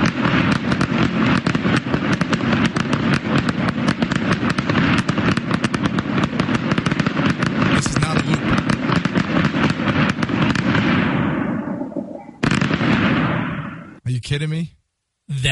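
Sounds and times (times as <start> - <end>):
dense rapid barrage of firework bangs: 0.0 - 14.0
man speaking: 7.8 - 8.6, 14.0 - 15.5.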